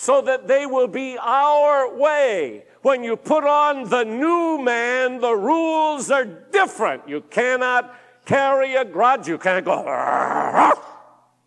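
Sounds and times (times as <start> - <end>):
speech: 0.0 - 10.9
person's voice imitating a dog's growl: 9.9 - 11.0.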